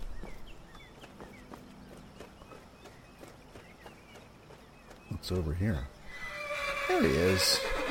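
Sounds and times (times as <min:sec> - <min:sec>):
horse hooves clip-clopping at a walk: 0:00.2 - 0:05.3
speech: 0:05.2 - 0:06.0, 0:06.9 - 0:07.8.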